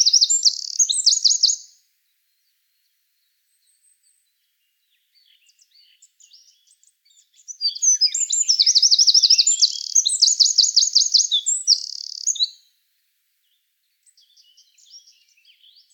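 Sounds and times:
Eurasian wren Troglodytes troglodytes trilling song: 0.0s - 1.8s, 3.7s - 12.7s, 14.0s - 15.9s.

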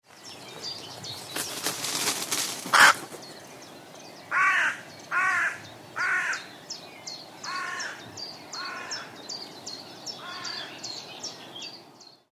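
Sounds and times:
Carrion crow cawing: 2.7s - 3.0s, 4.3s - 6.5s, 7.4s - 8.0s, 8.6s - 9.1s, 10.2s - 10.8s.

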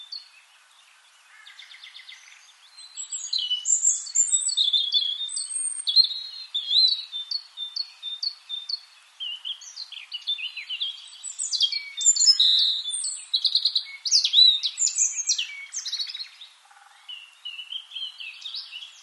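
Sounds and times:
European robin singing: 0.0s - 19.0s.

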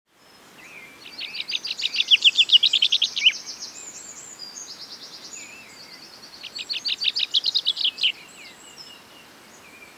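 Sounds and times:
common chaffinch Fringilla coelebs singing: 0.7s - 4.6s, 5.4s - 9.0s.

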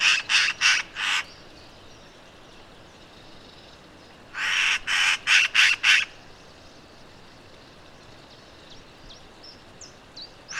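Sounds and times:
Eurasian magpie chattering: 0.0s - 1.3s, 4.4s - 6.1s.

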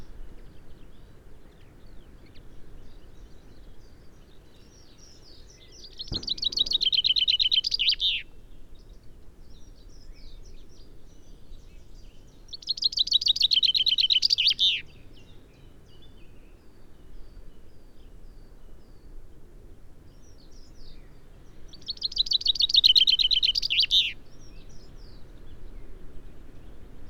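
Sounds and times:
common chaffinch Fringilla coelebs song: 4.3s - 8.4s, 12.1s - 16.0s, 20.9s - 25.9s
brief thump: 6.1s - 7.4s.

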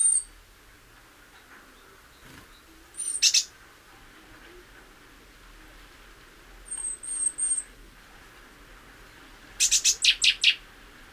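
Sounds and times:
great tit Parus major calling: 0.0s - 3.7s, 6.7s - 7.7s, 9.6s - 10.6s.

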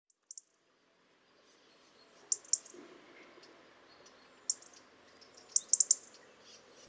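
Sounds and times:
soft background noise: 0.1s - 6.8s
European robin Erithacus rubecula high tick calls: 2.2s - 2.8s, 3.4s - 6.8s.

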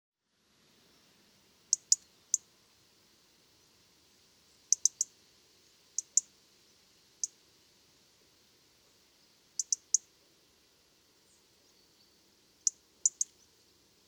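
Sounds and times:
faint low hiss: 0.0s - 14.0s
European robin ticking calls: 1.7s - 2.5s, 4.4s - 6.4s, 7.1s - 7.4s, 9.5s - 10.1s, 11.3s - 13.7s.

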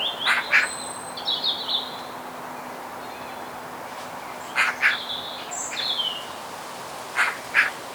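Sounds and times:
Eurasian magpie Pica pica harsh rattling chack notes: 0.2s - 0.7s, 4.5s - 5.1s, 7.1s - 7.8s.

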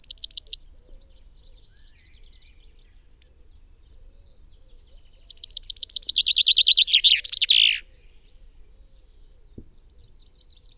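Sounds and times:
common chaffinch Fringilla coelebs singing: 0.0s - 0.6s, 5.2s - 7.9s.

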